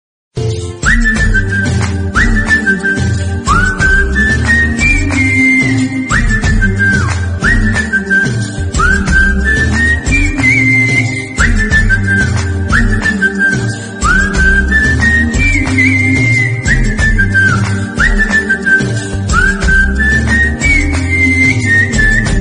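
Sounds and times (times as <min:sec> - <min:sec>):
love song flute music ringtone: 0:00.5 - 0:22.3.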